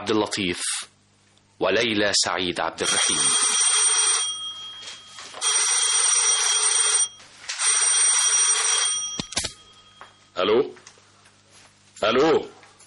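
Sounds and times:
speech: 0:00.0 - 0:00.9, 0:01.6 - 0:03.7, 0:10.4 - 0:10.8, 0:12.0 - 0:12.6
telephone bell ringing in an apartment: 0:02.8 - 0:10.3.

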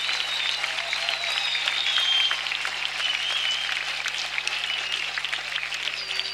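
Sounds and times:
audience applauding a band after a live rock concert performance: 0:00.0 - 0:06.3
whistles from concert audience: 0:00.0 - 0:06.3.

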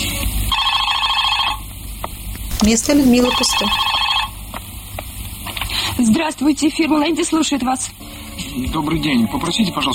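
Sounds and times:
faint static: 0:00.1 - 0:05.6
telephone ringing during a call to an office: 0:00.5 - 0:01.7, 0:02.5 - 0:04.4
speech: 0:02.7 - 0:03.9, 0:06.1 - 0:08.0, 0:08.5 - 0:09.9.

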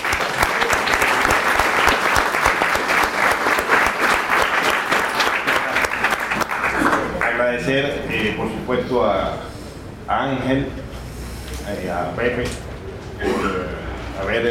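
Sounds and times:
audience applause at a book presentation: 0:00.0 - 0:08.3
speech: 0:07.7 - 0:09.5, 0:10.1 - 0:10.8, 0:11.7 - 0:12.6, 0:14.2 - 0:14.4.

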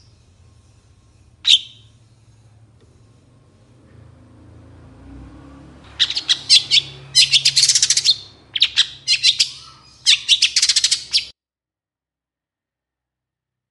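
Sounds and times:
long-tailed shrike singing in the morning: 0:01.4 - 0:02.0, 0:05.9 - 0:11.3.

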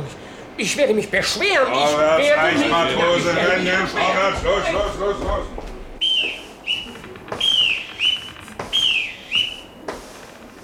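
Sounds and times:
speech: 0:00.6 - 0:05.7
boatswain's pipe whistling on a ship: 0:06.0 - 0:09.8.

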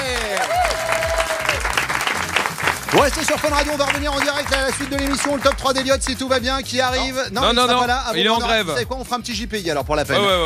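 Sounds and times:
audience applause for two comedians on a radio show: 0:00.0 - 0:06.7
speech: 0:02.9 - 0:10.4.

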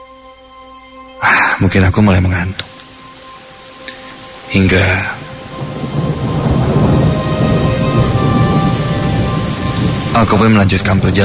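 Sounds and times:
rain falling: 0:01.2 - 0:11.2
speech: 0:01.6 - 0:02.7, 0:04.5 - 0:05.2, 0:10.2 - 0:11.2
thunder rumbling: 0:04.4 - 0:11.2.

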